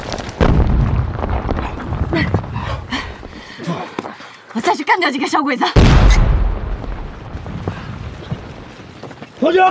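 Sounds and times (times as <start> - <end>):
explosion blowing up a rear escape tunnel: 0.0 - 3.3, 5.8 - 9.0
speech: 5.0 - 6.2, 9.5 - 9.7.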